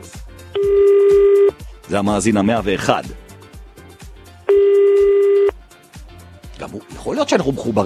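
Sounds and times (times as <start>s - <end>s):
telephone ringing tone on a dialed call that goes unanswered: 0.6s - 1.6s, 4.5s - 5.5s
speech: 1.9s - 3.2s, 7.1s - 7.8s.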